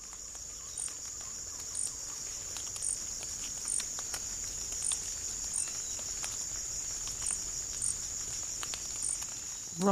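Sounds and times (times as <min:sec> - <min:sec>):
insects droning in an acacia plantation forest: 0:00.0 - 0:09.9.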